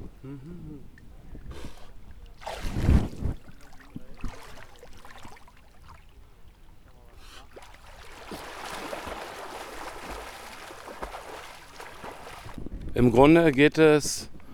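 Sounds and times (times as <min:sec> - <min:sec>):
speech: 0:00.2 - 0:01.8, 0:13.0 - 0:14.3
lake water sloshing and splashing from wading: 0:02.0 - 0:12.8.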